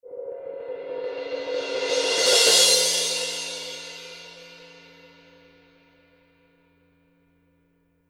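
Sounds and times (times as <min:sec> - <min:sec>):
heavy crash cymbal: 0:00.1 - 0:05.7.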